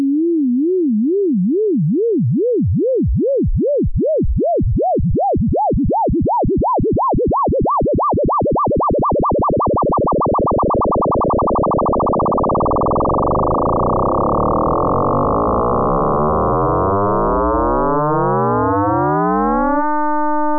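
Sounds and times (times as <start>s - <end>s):
computer music synthesized signal: 0.1s - 20.5s.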